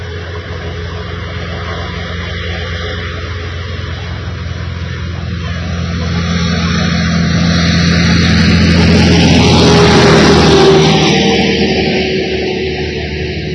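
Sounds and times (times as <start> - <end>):
car driving on road: 0.0 - 13.5.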